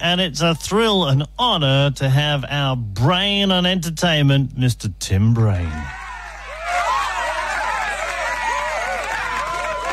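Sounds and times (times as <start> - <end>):
speech: 0.0 - 6.0
loud crowd cheering and whooping: 5.8 - 9.9.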